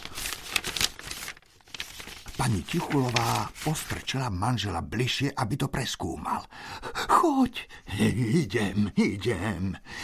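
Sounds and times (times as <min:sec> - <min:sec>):
dry rustling and crinkling of a pile of old papers in a cellar corner: 0:00.0 - 0:04.4
speech: 0:02.4 - 0:10.0.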